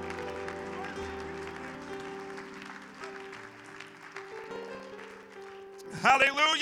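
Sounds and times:
sustained organ or keyboard chords: 0.0s - 3.4s
audience applauding with dense continuous clapping: 0.0s - 6.6s
speech: 6.0s - 6.6s.

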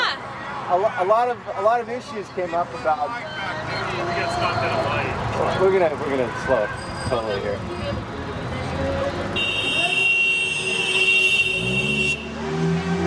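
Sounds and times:
low rumble of street traffic: 0.0s - 13.0s
speech: 0.7s - 8.1s
car horn blaring in street traffic: 9.3s - 12.4s.

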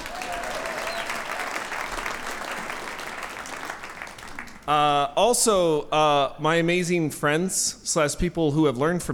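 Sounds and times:
audience applause: 0.0s - 4.7s
speech: 4.7s - 9.1s.

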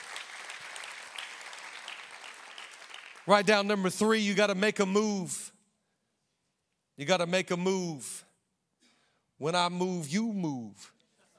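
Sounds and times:
crowd applauding: 0.0s - 3.6s
speech: 3.2s - 5.5s, 7.0s - 8.3s, 9.4s - 11.0s.

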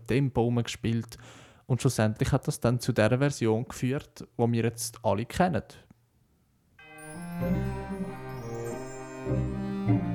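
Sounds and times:
speech: 0.1s - 5.8s, 7.4s - 7.8s
church bells ringing within a music track: 6.8s - 10.1s
instrumental music backdrop: 6.8s - 10.1s.

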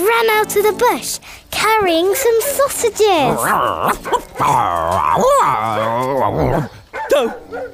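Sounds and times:
speech: 0.2s - 7.7s
voice imitating a dog with yipping whining barks: 2.2s - 7.5s.

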